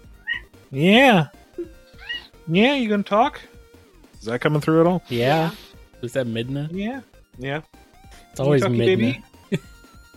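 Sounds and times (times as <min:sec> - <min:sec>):
domestic cat meowing: 0:00.2 - 0:00.5, 0:01.9 - 0:02.3
speech: 0:00.7 - 0:01.4, 0:02.5 - 0:03.5, 0:04.2 - 0:07.8, 0:08.4 - 0:09.7.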